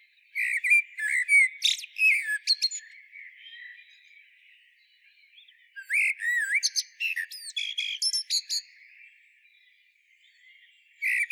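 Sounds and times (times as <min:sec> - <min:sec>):
Eurasian blackbird Turdus merula song with slurred whistles and twittering: 0:00.0 - 0:11.2.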